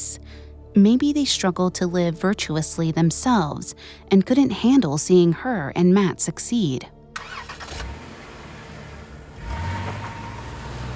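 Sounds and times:
speech: 0.8 - 7.4
car engine starting and idling: 7.2 - 10.9.

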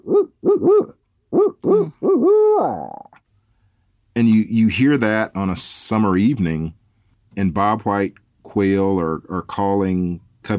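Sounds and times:
human voice imitating a barred owl's hooting call: 0.0 - 3.2
speech: 4.2 - 6.8, 7.4 - 10.5.

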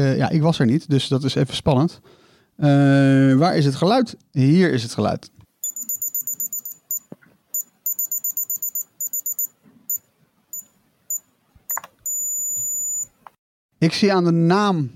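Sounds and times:
speech: 0.0 - 5.4, 13.8 - 14.9
electronic ear thermometer beeping: 5.6 - 13.2.

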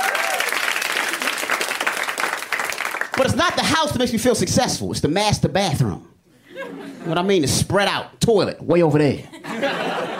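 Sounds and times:
stand-up comedy audience applause: 0.0 - 3.4
speech: 3.2 - 9.9
laughter: 6.4 - 7.3, 9.3 - 10.1.

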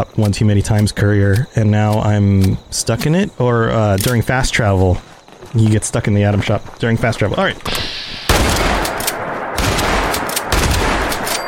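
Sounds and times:
speech: 0.0 - 7.9
shotgun blasts in a video game: 7.7 - 11.4.

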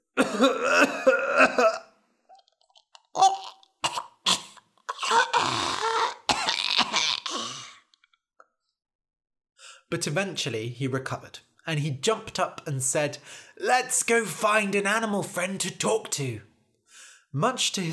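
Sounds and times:
person performing helpless coughing: 0.1 - 2.0, 3.2 - 7.8
speech: 0.3 - 0.7, 10.0 - 16.5, 17.3 - 17.9
person groaning strained: 4.9 - 7.8.

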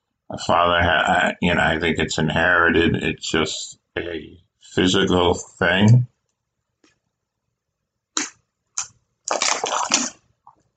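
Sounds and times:
speech: 0.3 - 6.1
gulping and swallowing water: 8.2 - 10.2
person slurping a sip of water: 8.2 - 10.2.

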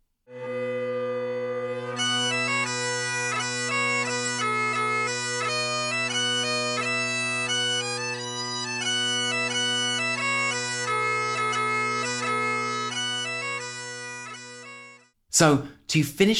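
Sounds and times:
bagpipes playing a tune with drones and chanter melody: 0.3 - 15.1
speech: 15.4 - 16.3.

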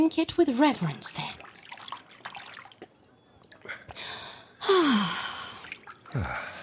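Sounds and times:
speech: 0.0 - 1.5, 4.7 - 5.2
milk sloshing and splashing in a bath: 1.2 - 3.7, 5.5 - 6.1
person gasping and sighing: 3.9 - 6.6.

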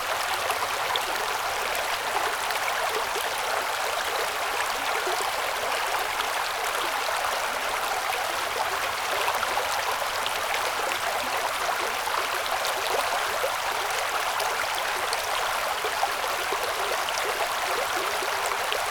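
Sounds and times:
creek flowing downhill at night: 0.0 - 18.9.

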